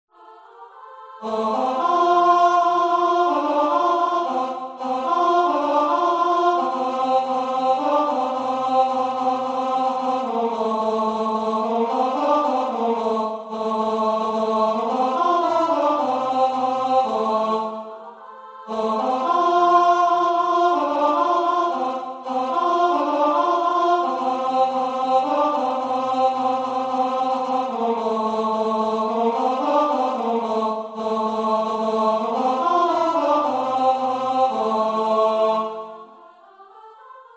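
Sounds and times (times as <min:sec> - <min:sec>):
tenor singing from a chorus: 0:00.2 - 0:37.3.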